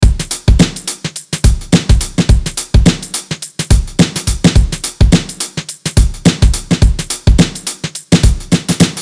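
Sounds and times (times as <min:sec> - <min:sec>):
acoustic drums: 0:00.0 - 0:09.0.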